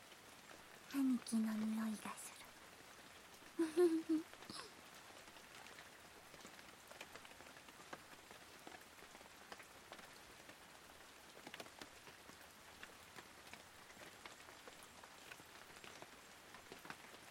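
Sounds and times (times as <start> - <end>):
rain falling: 0.0 - 17.2
speech: 0.9 - 2.3, 3.8 - 4.6
short voice sound: 3.6 - 4.7.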